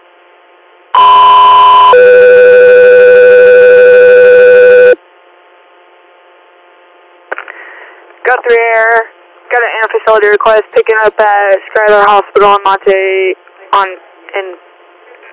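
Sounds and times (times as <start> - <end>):
dispatch electronic paging alert tones: 1.0 - 5.0
speech: 8.4 - 14.6
radio hiss: 9.5 - 15.3.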